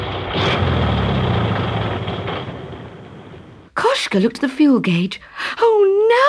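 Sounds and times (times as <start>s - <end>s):
car engine spluttering and stalling with rough rumble: 0.0s - 3.7s
speech: 4.0s - 6.2s.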